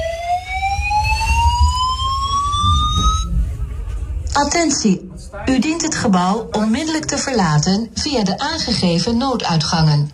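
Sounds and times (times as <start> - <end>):
building evacuation alarm electronic tone: 0.0 - 3.4
low rumble: 0.0 - 5.4
speech: 4.4 - 10.1.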